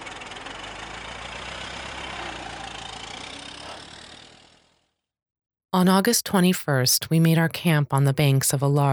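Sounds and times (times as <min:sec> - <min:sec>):
repaired car engine idling with rough throbbing rumble: 0:00.0 - 0:05.0
speech: 0:05.8 - 0:08.9.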